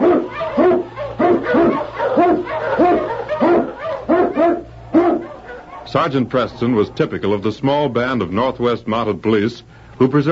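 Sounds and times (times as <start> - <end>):
Eskimo sled lead dog barking in storm and snow: 0.0 - 6.8
speech: 6.0 - 10.3.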